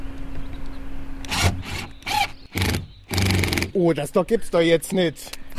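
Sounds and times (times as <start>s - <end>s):
cordless drill boring into wood: 1.3s - 3.7s
speech: 3.8s - 5.4s.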